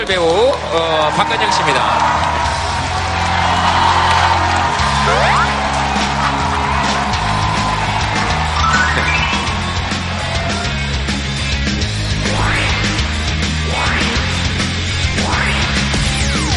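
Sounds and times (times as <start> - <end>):
crowd applauding to welcome a guest: 0.0 - 16.5
speech: 0.1 - 2.5
rising whistles: 8.5 - 9.8.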